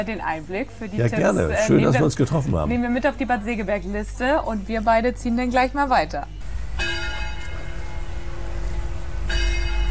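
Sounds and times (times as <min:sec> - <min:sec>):
speech: 0:00.0 - 0:06.9
steady outdoor noise: 0:00.0 - 0:09.8
church bells ringing: 0:06.8 - 0:09.8.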